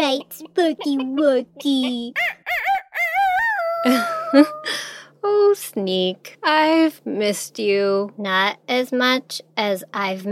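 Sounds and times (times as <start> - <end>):
speech: 0.0 - 2.6, 3.8 - 10.3
chicken clucking: 0.0 - 4.4
laughter: 3.8 - 4.8.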